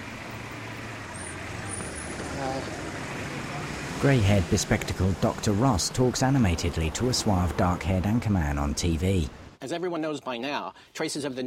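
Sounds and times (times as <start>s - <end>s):
bus driving away with low engine rumble: 0.0s - 9.6s
speech: 4.0s - 11.4s.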